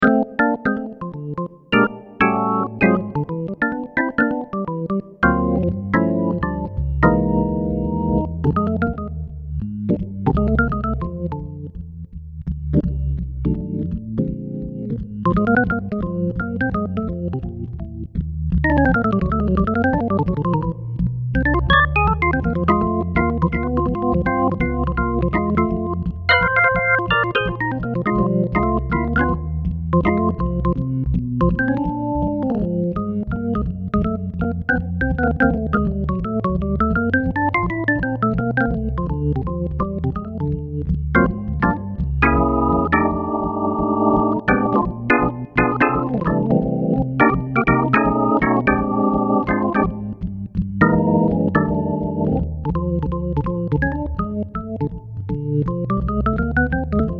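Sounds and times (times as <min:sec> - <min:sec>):
jazz organ: 0:00.0 - 0:11.8, 0:12.5 - 0:57.1.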